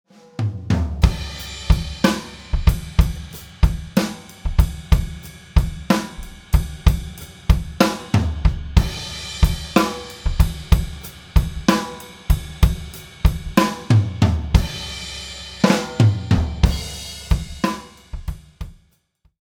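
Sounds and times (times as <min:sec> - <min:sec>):
Pearl Free Floating steel snare drum: 0:00.2 - 0:18.8.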